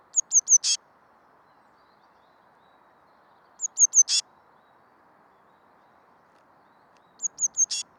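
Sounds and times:
Cyanistes caeruleus Eurasian blue tit calling high thin notes with a scratchy buzz: 0:00.2 - 0:00.8, 0:03.6 - 0:04.2, 0:07.1 - 0:07.8.

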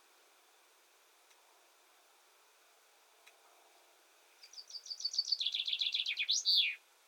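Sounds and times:
common chaffinch Fringilla coelebs song: 0:04.3 - 0:06.8.

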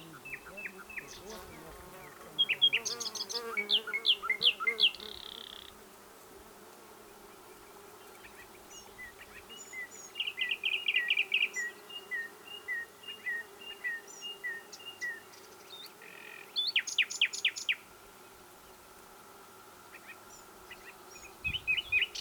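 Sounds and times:
Common nightingale Luscinia megarhynchos song: 0:00.0 - 0:05.7, 0:08.1 - 0:17.8, 0:20.0 - 0:22.1.

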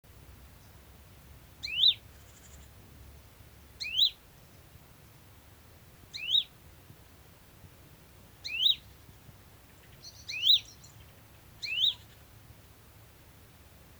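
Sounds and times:
great tit Parus major chirping: 0:01.6 - 0:02.8, 0:08.4 - 0:09.0, 0:09.8 - 0:12.2.

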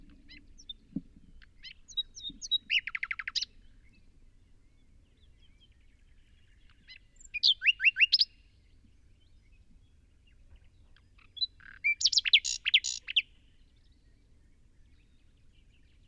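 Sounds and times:
common nightingale Luscinia megarhynchos singing: 0:01.4 - 0:04.1, 0:06.4 - 0:08.5, 0:11.0 - 0:13.4.

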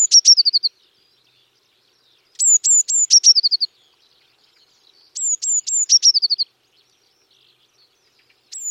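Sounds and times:
Eurasian Blue Tit Cyanistes caeruleus whistled notes and descending trill: 0:00.0 - 0:08.7.

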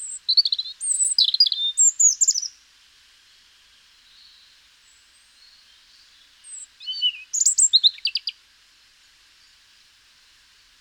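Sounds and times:
European robin singing high varied twittering phrases: 0:00.0 - 0:02.5, 0:05.4 - 0:08.3.

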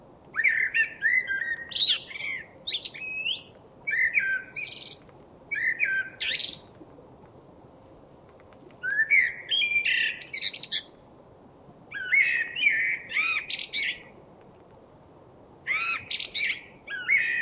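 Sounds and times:
faint steady hiss: 0:00.0 - 0:17.4
common blackbird Turdus merula song: 0:00.3 - 0:06.8, 0:08.8 - 0:11.0, 0:11.9 - 0:14.1, 0:15.7 - 0:17.4.

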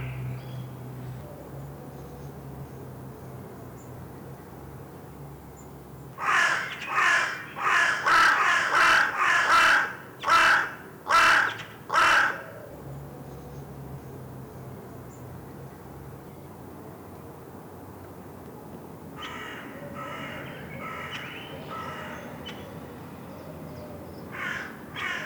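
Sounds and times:
carrion crow giving harsh hoarse caws: 0:06.2 - 0:12.6, 0:19.2 - 0:22.6, 0:24.3 - 0:25.2.

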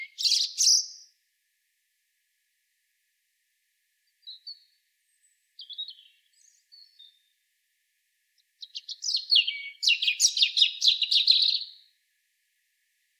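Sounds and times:
European robin Erithacus rubecula singing: 0:00.0 - 0:01.1, 0:04.2 - 0:07.3, 0:08.6 - 0:11.9.

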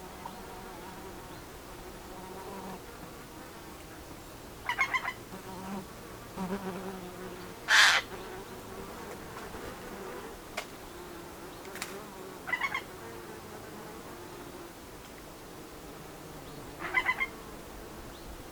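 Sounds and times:
quiet hiss: 0:00.0 - 0:18.4
Eurasian jay Garrulus glandarius screech and rattles: 0:07.7 - 0:08.1.

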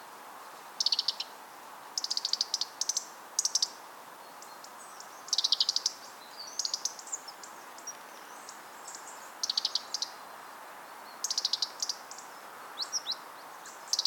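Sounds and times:
background hiss: 0:00.0 - 0:14.0
European robin ticking calls, Erithacus rubecula: 0:00.8 - 0:01.3, 0:02.0 - 0:03.8, 0:04.4 - 0:10.2, 0:11.2 - 0:14.0.

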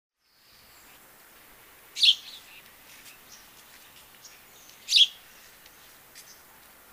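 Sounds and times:
house sparrow Passer domesticus chirping: 0:02.0 - 0:06.5.

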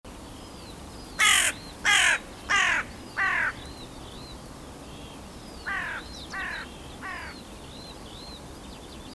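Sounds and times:
carrion crow Corvus corone cawing: 0:01.2 - 0:03.6, 0:05.7 - 0:07.4.

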